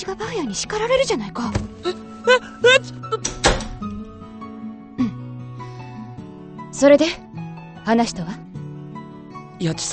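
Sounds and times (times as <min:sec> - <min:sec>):
speech: 0:00.0 - 0:03.2, 0:06.8 - 0:07.2, 0:07.9 - 0:08.5, 0:09.6 - 0:09.9
door swinging shut: 0:03.2 - 0:04.1.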